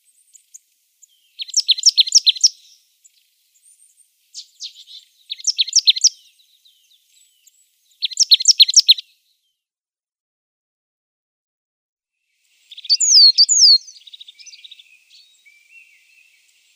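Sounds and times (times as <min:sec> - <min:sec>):
faint thin bird notes: 0:00.1 - 0:09.5, 0:12.3 - 0:16.7
marsh tit singing rapid high chipping notes: 0:00.3 - 0:02.8, 0:04.4 - 0:06.2, 0:07.4 - 0:09.0, 0:12.7 - 0:15.2.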